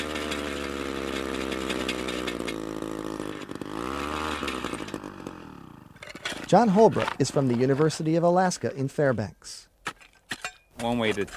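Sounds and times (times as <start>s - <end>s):
power drill boring holes in soil: 0.0s - 7.8s
speech: 6.5s - 9.7s, 10.8s - 11.3s.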